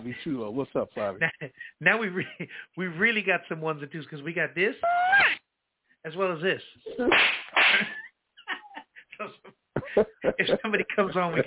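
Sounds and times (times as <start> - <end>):
speech: 0.0 - 5.4, 6.0 - 8.0, 10.0 - 11.4
sharp slapping hits: 7.1 - 7.9
laughter: 7.7 - 11.4.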